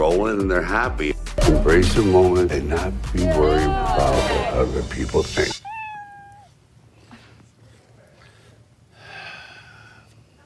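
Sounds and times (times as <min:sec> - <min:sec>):
speech: 0:00.0 - 0:05.6
steady low hum: 0:02.2 - 0:10.4
cat meowing: 0:05.6 - 0:06.6.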